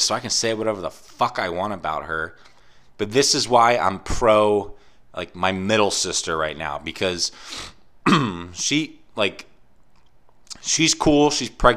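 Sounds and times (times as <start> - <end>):
speech: 0.0 - 9.5, 10.6 - 11.7
person clearing throat: 8.0 - 8.6.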